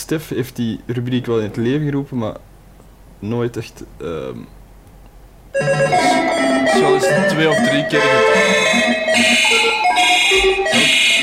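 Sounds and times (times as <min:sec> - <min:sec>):
speech: 0:00.1 - 0:02.5, 0:03.2 - 0:04.6, 0:05.5 - 0:11.0
electronic telephone ringtone jingle: 0:05.6 - 0:11.2.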